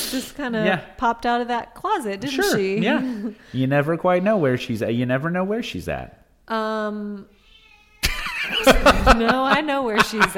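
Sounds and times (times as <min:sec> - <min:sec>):
speech: 0:00.1 - 0:07.4, 0:08.4 - 0:10.3
cat meowing: 0:07.4 - 0:08.1
laughter: 0:08.0 - 0:10.3.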